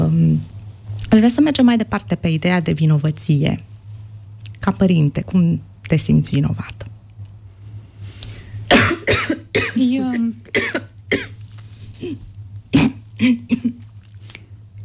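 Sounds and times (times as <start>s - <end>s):
steady low hum: 0.0s - 14.8s
speech: 1.1s - 3.7s, 4.6s - 6.9s
interviewer coughing: 8.7s - 11.4s, 12.0s - 13.8s.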